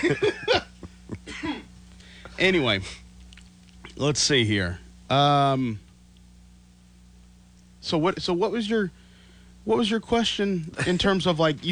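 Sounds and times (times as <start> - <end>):
speech: 0.0 - 0.6, 2.4 - 3.0, 4.0 - 5.8, 7.8 - 9.0, 9.6 - 11.7
laughter: 0.0 - 1.6
rough hacking coughs: 1.2 - 1.7.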